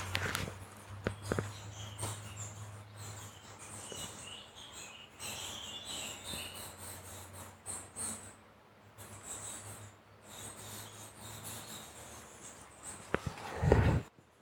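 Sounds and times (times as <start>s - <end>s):
bats squeaking and chittering inside a heavily inhabited roost: 0.0s - 13.2s
microphone rubbing and handling noise: 13.2s - 14.1s.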